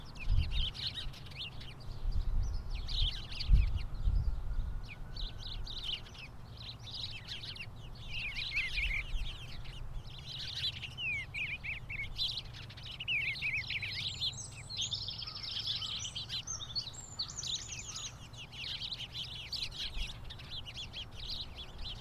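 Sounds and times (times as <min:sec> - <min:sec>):
many birds chirping and singing in an outdoor chorus: 0:00.0 - 0:21.9.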